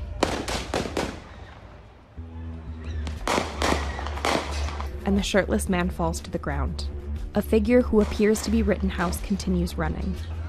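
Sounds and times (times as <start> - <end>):
gunshots near the parking lot of an auto service shop: 0.0 - 1.9, 3.0 - 5.0
speech: 5.1 - 10.4.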